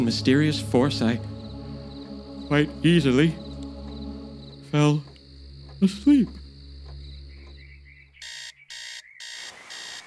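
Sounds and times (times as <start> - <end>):
speech: 0.0 - 1.4, 2.5 - 3.4, 4.7 - 5.1, 5.8 - 6.4
loud alarm clock ringing in the morning: 8.2 - 10.0.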